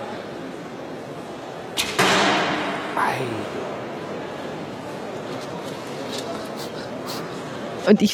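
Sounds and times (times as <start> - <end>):
arrow shot from a bow: 1.8 - 2.8
speech: 3.0 - 3.8, 7.9 - 8.1.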